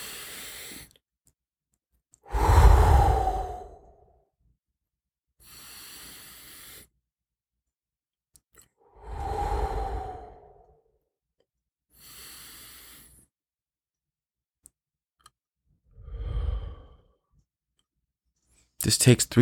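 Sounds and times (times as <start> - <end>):
slow deep breaths in and out: 0.0 - 1.0, 2.2 - 4.2, 5.4 - 7.0, 8.8 - 10.8, 11.9 - 13.4, 15.9 - 17.4
speech: 18.8 - 19.3.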